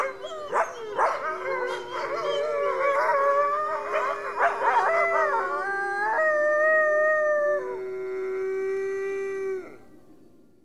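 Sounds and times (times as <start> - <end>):
coyote yip howls: 0.0 - 7.7
wolf chorus howling: 0.0 - 9.9.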